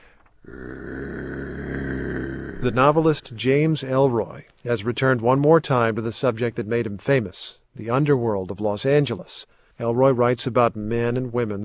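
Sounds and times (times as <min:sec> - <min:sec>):
man imitating a menacing dog growl: 0:00.4 - 0:03.1
speech: 0:00.5 - 0:00.8, 0:02.6 - 0:11.6.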